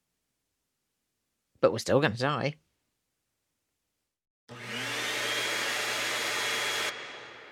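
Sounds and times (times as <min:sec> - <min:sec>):
speech: 0:01.6 - 0:02.6
vacuum cleaner hoovering stairs: 0:04.5 - 0:07.4.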